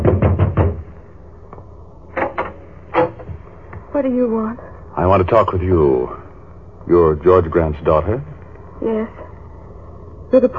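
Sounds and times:
knocking on a wooden door: 0.0 - 0.9
speech: 4.0 - 6.2, 6.8 - 9.2, 10.3 - 10.5.

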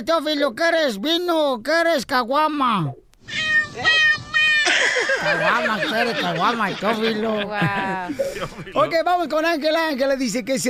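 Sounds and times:
speech: 0.0 - 4.1, 4.8 - 10.6
pet cat meowing: 3.2 - 4.8
laughter: 4.6 - 8.9.

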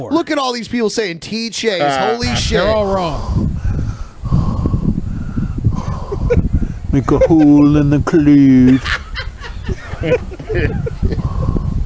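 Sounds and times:
speech: 0.0 - 3.5, 6.9 - 9.0, 10.0 - 11.2
heavy raspy breathing with wheezy snorting bursts: 2.3 - 6.9, 10.8 - 11.8
laughter: 5.8 - 11.6.

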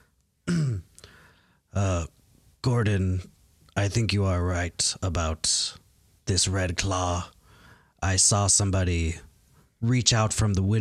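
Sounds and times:
person clearing throat: 0.4 - 1.0
speech: 2.7 - 7.4, 8.0 - 10.7.

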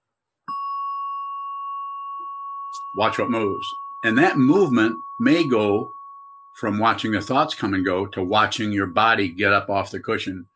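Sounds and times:
meditation bell being struck: 0.5 - 10.5
speech: 3.0 - 6.0, 6.6 - 10.5.

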